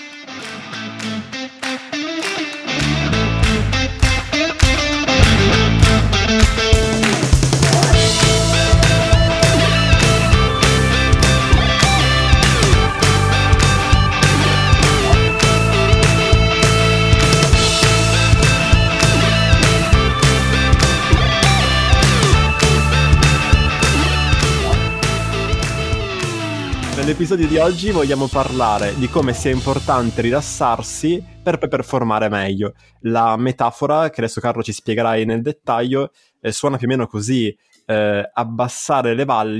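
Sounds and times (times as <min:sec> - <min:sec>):
upbeat podcast theme jingle with synth and driving beat: 0:02.8 - 0:31.8
speech: 0:27.4 - 0:39.5.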